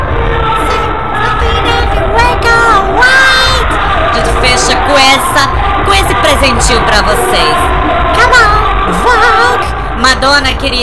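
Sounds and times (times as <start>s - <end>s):
large crowd screaming and cheering: 0.0s - 10.8s
speech: 10.1s - 10.8s.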